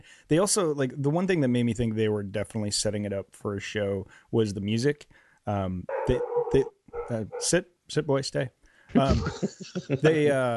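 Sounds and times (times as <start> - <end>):
speech: 0.3 - 10.5
small fluffy dog barking: 5.9 - 7.5
laughter: 9.0 - 10.5.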